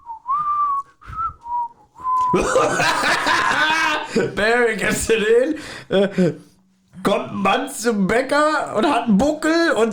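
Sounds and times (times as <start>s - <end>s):
person whistling a short wavering tune: 0.0s - 2.4s
speech: 2.3s - 3.6s, 4.2s - 9.9s
person laughing loudly: 2.3s - 4.4s.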